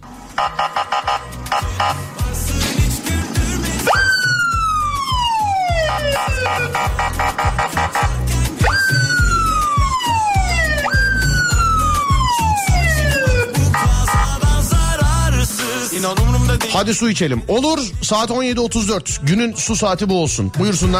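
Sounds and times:
steady rhythmic beat: 0.0s - 19.9s
emergency vehicle siren sound effect wailing: 0.1s - 2.2s, 3.8s - 14.4s
speech: 0.4s - 0.8s, 16.1s - 20.9s.

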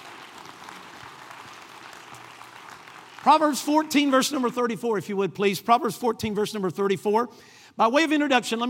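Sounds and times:
crowd clapping: 0.0s - 4.8s
speech: 3.2s - 8.6s.

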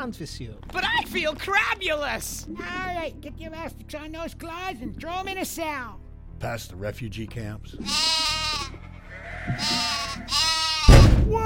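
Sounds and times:
speech: 0.0s - 8.2s, 9.5s - 10.4s
sheep bleating: 7.8s - 11.0s
low rumbling thud: 10.8s - 11.4s.

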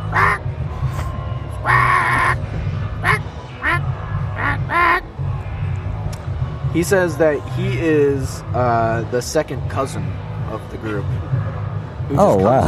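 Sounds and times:
person imitating penguin squawks: 0.0s - 0.5s, 1.6s - 2.4s, 3.0s - 3.8s, 4.4s - 5.0s
steady low hum: 0.0s - 12.6s
speech: 6.8s - 11.4s, 12.1s - 12.6s.

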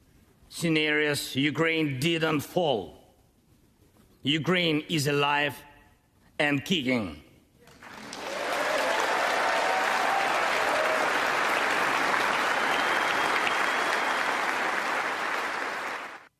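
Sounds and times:
speech: 0.6s - 3.0s, 4.2s - 5.7s, 6.4s - 7.2s
thunderous applause from members of Congress: 7.8s - 16.3s.

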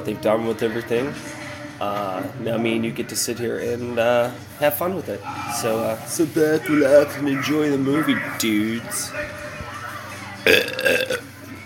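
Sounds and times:
speech: 0.0s - 9.5s, 10.4s - 11.3s
loud drawn-out burp: 10.4s - 11.3s.

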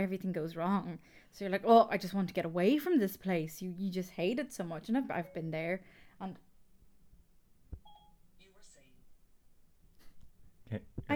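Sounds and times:
speech: 0.0s - 6.5s, 10.7s - 11.1s
mobile phone electronic beeps and chirps: 7.8s - 8.3s.

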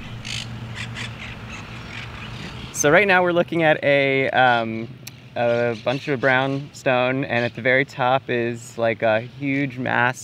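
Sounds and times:
parrots squawking: 0.0s - 2.8s
low rumble of city noise: 0.0s - 10.2s
speech: 2.8s - 10.2s.

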